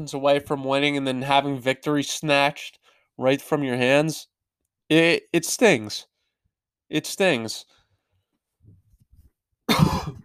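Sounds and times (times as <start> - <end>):
speech: 0.0 - 4.3, 4.9 - 6.1, 6.9 - 7.8
loud rough cough: 9.7 - 10.2.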